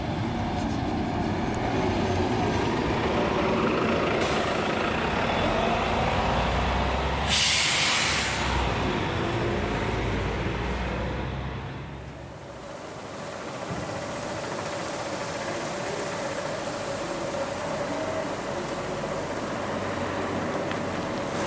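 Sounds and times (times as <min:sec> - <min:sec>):
passing bus engine rumbling: 0:00.0 - 0:21.4
bus air brakes releasing with hissing bursts: 0:07.2 - 0:08.6.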